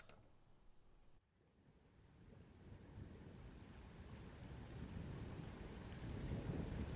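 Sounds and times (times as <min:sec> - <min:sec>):
steady rain in a low rumbling downpour: 0:01.7 - 0:06.9
sharp loud thunderclap: 0:02.0 - 0:06.9.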